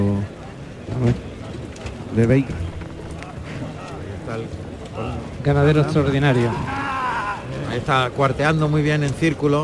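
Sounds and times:
noisy outdoor crowd: 0.0s - 9.6s
speech: 2.2s - 2.7s, 4.3s - 6.8s, 7.7s - 9.6s
horseman shouting to urge on a bull and horse: 6.0s - 7.6s.

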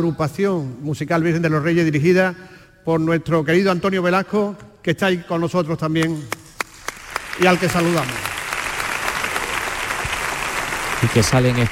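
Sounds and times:
speech: 0.0s - 6.4s, 7.4s - 8.3s, 11.0s - 11.6s
large theatre audience applauding: 6.5s - 11.6s.

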